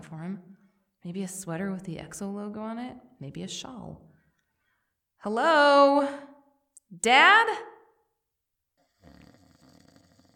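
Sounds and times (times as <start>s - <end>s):
speech: 0.1s - 4.1s, 5.2s - 6.3s, 6.9s - 7.7s
man snoring while asleep: 8.8s - 10.3s.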